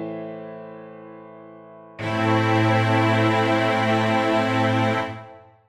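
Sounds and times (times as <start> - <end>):
A minor chord: 2.0 - 5.6.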